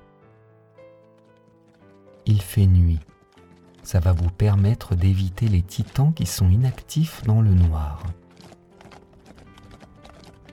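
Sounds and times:
ridden horse hooves clip-clopping at night: 0.3 - 10.5
sustained tonal musical backdrop: 2.2 - 10.5
speech: 2.3 - 3.1, 3.9 - 8.2.

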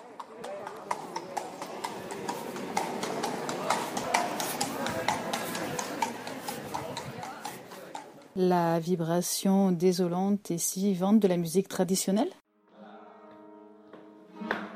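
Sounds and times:
horse hooves clip-clopping on hard pavement pulling tourist carriages: 0.0 - 8.4
low murmur of voices: 0.0 - 8.4
street bustle: 0.0 - 9.1
speech: 8.4 - 12.4.

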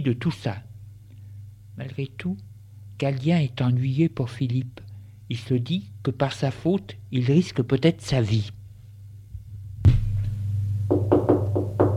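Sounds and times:
speech: 0.0 - 0.7, 1.8 - 8.6
low hum: 0.0 - 11.9
dull thud: 9.8 - 10.3
sharp knocks on a door: 10.9 - 11.9.

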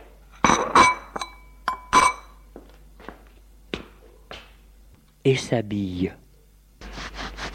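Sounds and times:
breakfast dishes and glassware clinking: 0.4 - 2.4
speech: 5.2 - 6.2.

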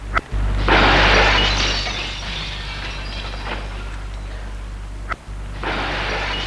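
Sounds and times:
window glass in a basement room smashed with a stone: 0.6 - 4.6, 5.6 - 6.4.

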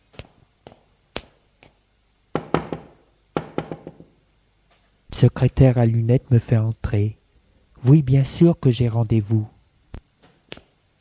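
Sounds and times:
knocking on an apartment door: 2.3 - 4.1
speech: 5.2 - 7.2, 7.8 - 9.5.

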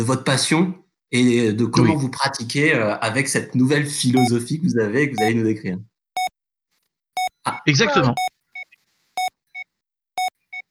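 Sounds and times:
speech: 0.0 - 5.9, 7.4 - 8.3
medical monitor beeping: 5.2 - 5.4, 7.2 - 10.6.

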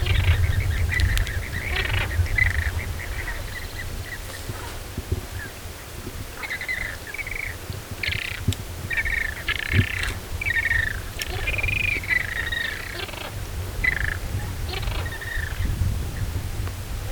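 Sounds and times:
flamingos calling along a lagoon shore: 0.0 - 16.2
steady low rumble of wind: 0.0 - 17.1.

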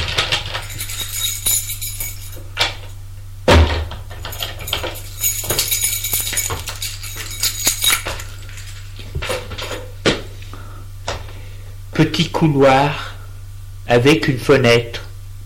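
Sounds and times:
metallic clicks and rattling of a key in a door lock: 0.0 - 3.0, 4.1 - 9.9
speech: 12.2 - 13.1, 13.9 - 15.0.

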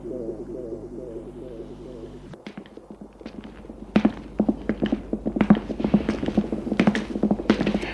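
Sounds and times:
low humming tone: 0.0 - 7.9
footsteps on a hard floor: 2.4 - 7.9.

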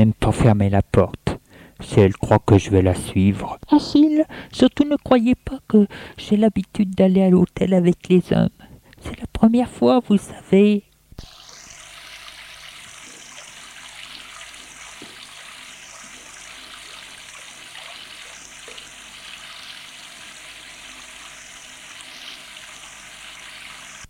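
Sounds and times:
speech: 0.0 - 1.2, 1.8 - 11.3
running water: 11.2 - 24.0.

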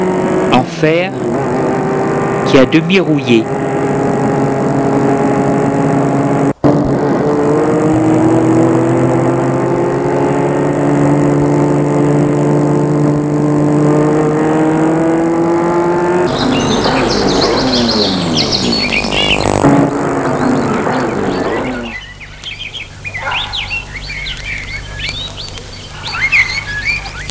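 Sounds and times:
birds chirping and tweeting in open countryside: 0.0 - 6.4, 14.1 - 27.2
car engine humming driving up to an iron gate in open countryside: 0.0 - 27.2
speech: 0.8 - 1.6, 2.5 - 3.6.

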